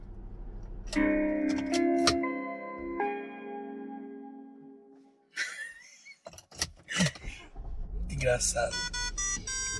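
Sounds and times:
mechanical clunks inside a car: 0.6 - 2.3, 6.3 - 9.7
speech: 0.9 - 1.8, 8.2 - 9.0
car shutdown chime playing a short electronic melody: 0.9 - 4.4, 8.1 - 9.7.

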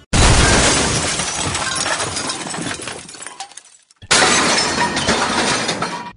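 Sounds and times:
glass shattering from things thrown out a window: 0.2 - 6.1.

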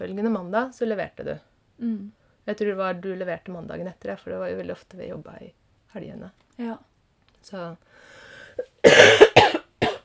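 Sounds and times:
speech: 0.0 - 9.2
person coughing: 8.8 - 10.0.

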